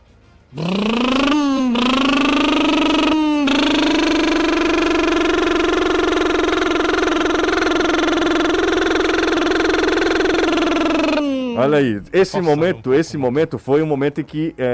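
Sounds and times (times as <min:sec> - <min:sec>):
speech: 0:00.5 - 0:00.8, 0:11.6 - 0:14.7
small 50cc motorcycle engine screaming while climbing sand dunes: 0:00.6 - 0:11.8.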